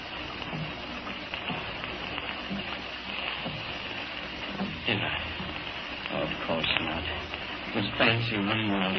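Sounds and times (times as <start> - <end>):
rain pattering on window panes: 0.0 - 8.9
soft dull taps: 0.3 - 6.0
speech: 4.9 - 5.3, 6.3 - 8.9.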